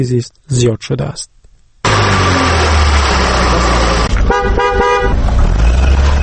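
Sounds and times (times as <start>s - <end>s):
speech: 0.0s - 1.4s
busy city street traffic in Dushanbe Tajikistan: 1.8s - 6.2s
car engines droning: 1.8s - 6.2s
car horn honks: 3.6s - 5.2s.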